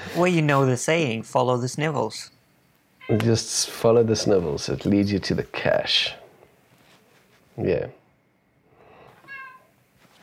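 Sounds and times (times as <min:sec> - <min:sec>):
speech: 0:00.1 - 0:02.4, 0:03.1 - 0:06.2, 0:07.6 - 0:08.0
cat meowing: 0:03.0 - 0:03.3, 0:09.2 - 0:09.7.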